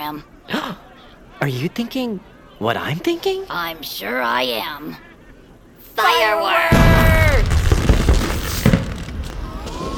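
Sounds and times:
speech: 0.1 - 5.1, 6.0 - 7.5
loud firework boom: 6.7 - 9.9.

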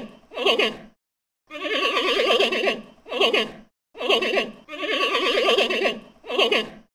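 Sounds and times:
giant panda giving shaky tremulous bleats: 0.0 - 0.9, 1.5 - 6.8.

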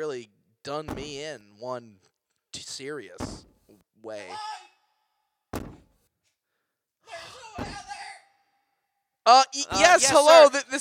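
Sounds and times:
speech: 0.0 - 4.6, 9.3 - 10.8
heavy knocking on a door: 0.9 - 1.2, 3.2 - 3.7, 5.6 - 5.9, 7.6 - 7.9.

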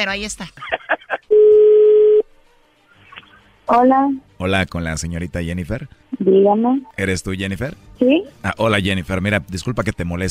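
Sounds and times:
speech: 0.0 - 0.8, 3.7 - 10.3
laughter: 0.6 - 1.3
telephone ringing tone as a call goes through: 1.3 - 2.2.

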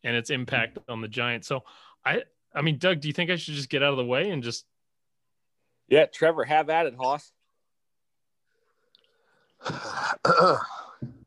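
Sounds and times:
speech: 0.0 - 4.7, 5.9 - 7.4, 9.6 - 11.1
man clearing his throat in rough raspy bursts: 9.6 - 11.2.

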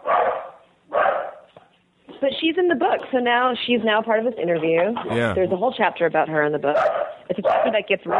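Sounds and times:
dog barking: 0.0 - 1.5, 6.8 - 8.1
speech: 2.2 - 8.1.

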